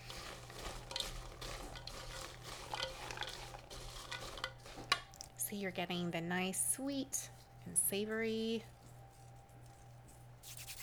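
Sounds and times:
salted pecans mixed by hand with fine sea salt: 0:00.0 - 0:05.3
speech: 0:05.5 - 0:08.8.

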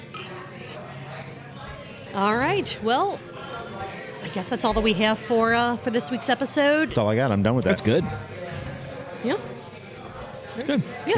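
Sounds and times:
glasses clinking in a toast: 0:00.0 - 0:00.6
speech: 0:02.1 - 0:03.4, 0:04.2 - 0:08.4, 0:09.2 - 0:09.5, 0:10.6 - 0:11.1.

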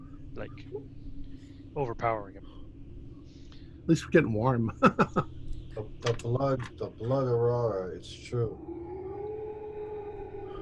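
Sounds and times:
low rumbling background: 0:00.0 - 0:10.6
speech: 0:00.4 - 0:02.5, 0:03.9 - 0:08.8
eerie drawn-out howl: 0:04.6 - 0:10.6
laughter: 0:04.7 - 0:05.2.

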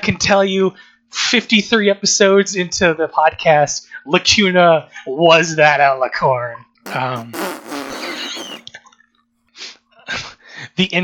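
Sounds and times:
speech: 0:00.0 - 0:07.5, 0:10.8 - 0:11.0
raspy fart noises imitating a triumphal trumpet fanfare: 0:06.9 - 0:08.7.

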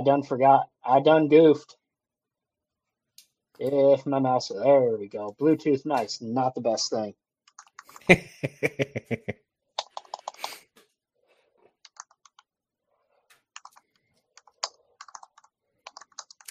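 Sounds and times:
speech: 0:00.0 - 0:01.8, 0:03.6 - 0:07.2, 0:07.9 - 0:09.4
laughter: 0:08.0 - 0:09.4
typing on a tactile mechanical keyboard: 0:09.8 - 0:10.6, 0:11.9 - 0:12.4, 0:13.6 - 0:16.4.

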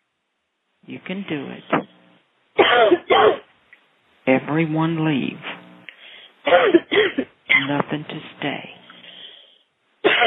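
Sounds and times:
speech: 0:00.8 - 0:01.9, 0:02.8 - 0:03.4, 0:04.3 - 0:05.5, 0:07.7 - 0:08.8
person giving rough raspy coughs: 0:02.6 - 0:03.4, 0:06.5 - 0:07.8, 0:10.0 - 0:10.2.

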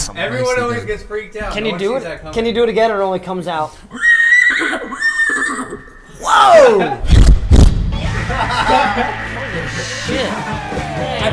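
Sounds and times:
speech: 0:00.2 - 0:04.1, 0:06.4 - 0:07.2, 0:08.3 - 0:11.3
person imitating a horse whinny with their voice: 0:03.9 - 0:06.8
laughter: 0:08.0 - 0:11.3.

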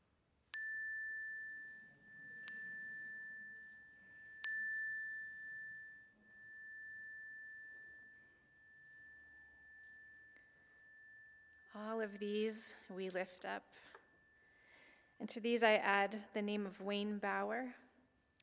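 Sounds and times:
bright chime ringing: 0:00.6 - 0:15.0
speech: 0:12.0 - 0:13.9, 0:15.2 - 0:17.8.

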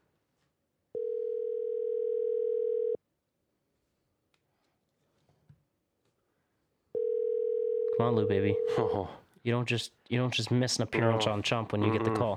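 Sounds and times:
phone outgoing ringback tone: 0:01.0 - 0:03.0, 0:07.0 - 0:08.8
speech: 0:08.0 - 0:12.3.

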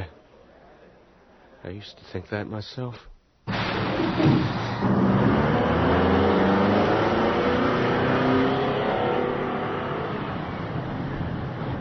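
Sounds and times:
speech: 0:01.6 - 0:03.1
bus engine rumbling while driving along its route: 0:04.0 - 0:11.7.

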